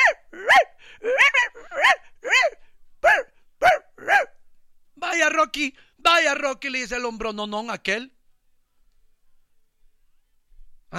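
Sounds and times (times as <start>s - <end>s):
person imitating small dog barking: 0.0s - 4.4s
speech: 5.5s - 8.2s.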